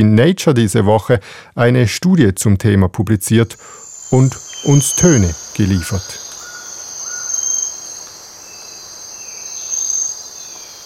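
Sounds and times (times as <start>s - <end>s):
speech: 0.0s - 6.2s
cicadas buzzing and trilling in a tropical rainforest at dawn: 3.3s - 10.8s
faint bird calls and chirps in a tropical rainforest: 3.5s - 10.8s.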